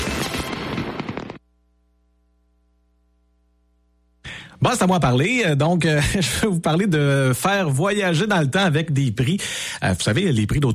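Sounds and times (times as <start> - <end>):
fireworks bursting and crackling: 0.0 - 1.4
speech: 4.6 - 10.7.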